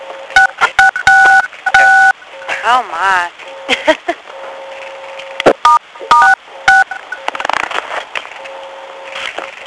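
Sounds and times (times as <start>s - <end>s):
two-tone DTMF keypad beeps from phone buttons pressed to mute a call: 0.3s - 2.5s, 4.6s - 7.5s
speech: 2.6s - 4.2s.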